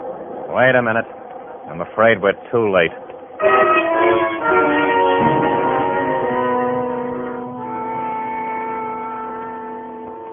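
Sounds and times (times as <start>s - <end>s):
speech: 0.6s - 4.7s
subway train pulling out of a station with a horn-like blare: 3.4s - 10.3s.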